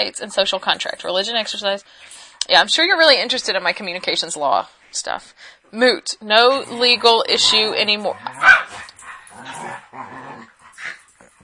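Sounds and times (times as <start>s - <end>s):
speech: 0.0s - 8.7s
dogs barking and growling: 6.3s - 11.4s.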